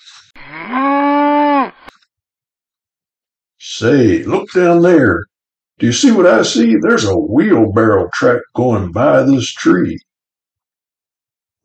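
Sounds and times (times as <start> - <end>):
cow mooing: 0.4 - 1.8
speech: 3.8 - 10.1.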